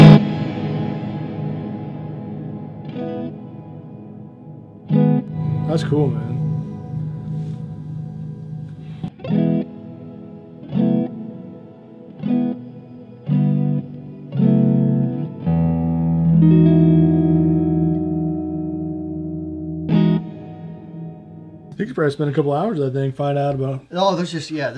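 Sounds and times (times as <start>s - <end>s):
electric guitar through a touch-responsive reverb pedal: 0.0s - 21.8s
speech: 5.8s - 6.3s, 22.0s - 24.7s.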